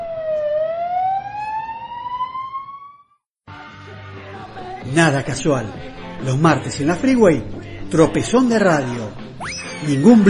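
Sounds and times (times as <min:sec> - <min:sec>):
ambulance siren wailing in a rising sweep: 0:00.0 - 0:03.2
speech: 0:04.8 - 0:10.2.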